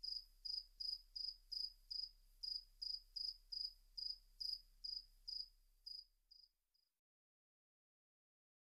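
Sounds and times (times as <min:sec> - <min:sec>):
cricket chirping: 0:00.0 - 0:06.9.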